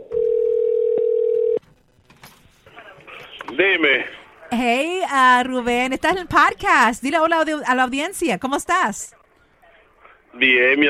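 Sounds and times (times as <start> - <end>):
telephone dial tone while a call is placed: 0.0 - 1.6
speech: 3.6 - 9.2, 10.4 - 10.8.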